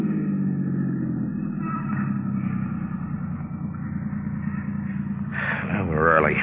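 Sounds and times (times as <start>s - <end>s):
car engine idling with the car pulled over: 0.0s - 6.4s.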